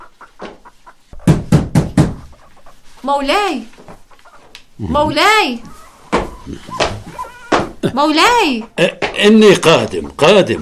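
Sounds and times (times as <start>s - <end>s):
knocking on a wooden door: 1.2s - 2.2s
speech: 3.0s - 3.8s, 4.8s - 5.7s, 7.8s - 10.6s.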